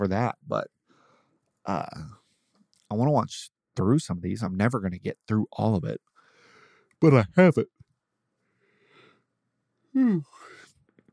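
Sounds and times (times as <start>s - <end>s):
speech: 0.0s - 0.8s, 1.6s - 2.2s, 2.9s - 6.1s, 7.0s - 7.8s, 10.0s - 10.5s
person yawning with a voiced groan: 10.0s - 10.7s.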